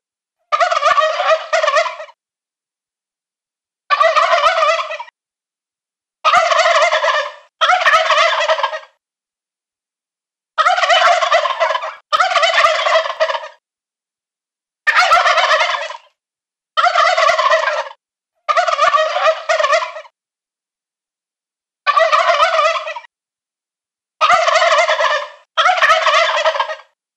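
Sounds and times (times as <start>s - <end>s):
adult male wild turkey gobbling: 0.5s - 2.2s, 3.9s - 5.1s, 6.2s - 9.0s, 10.6s - 13.6s, 14.9s - 16.1s, 16.8s - 20.1s, 21.9s - 23.1s, 24.2s - 27.0s.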